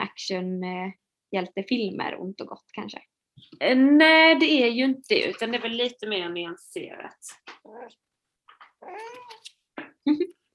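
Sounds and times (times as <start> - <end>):
speech: 0.2 - 8.1, 8.8 - 9.4, 10.0 - 10.4
cat meowing: 7.7 - 8.0, 8.8 - 9.5.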